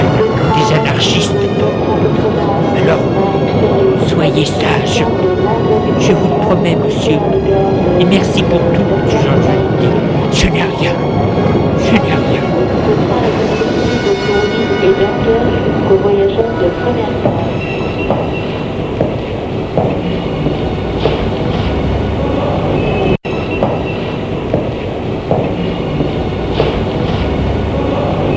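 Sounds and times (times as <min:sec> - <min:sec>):
train pulling away from a platform with rolling carriages: 0:00.0 - 0:28.3
speech: 0:06.0 - 0:13.0
train metallic squeals: 0:13.2 - 0:28.3.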